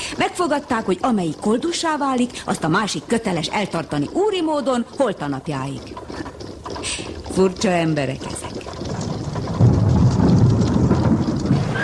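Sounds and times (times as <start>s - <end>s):
speech: 0.2s - 6.3s, 7.4s - 8.5s
deep sustained rumble of thunder from an approaching thunderstorm: 8.8s - 11.8s
steady rain: 8.9s - 11.8s.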